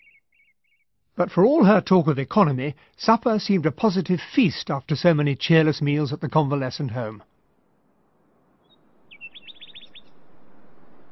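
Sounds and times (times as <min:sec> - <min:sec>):
nightingale singing rapid high chirping notes at night: 0:00.0 - 0:00.9, 0:08.6 - 0:10.2
speech: 0:01.2 - 0:07.3.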